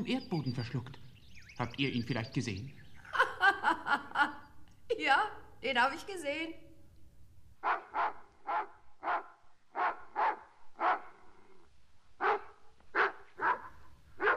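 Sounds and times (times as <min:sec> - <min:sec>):
speech: 0:00.0 - 0:02.8, 0:05.0 - 0:06.7, 0:07.6 - 0:08.0
laughter: 0:03.0 - 0:04.5
large dog growling and barking: 0:07.6 - 0:11.4, 0:12.2 - 0:14.3.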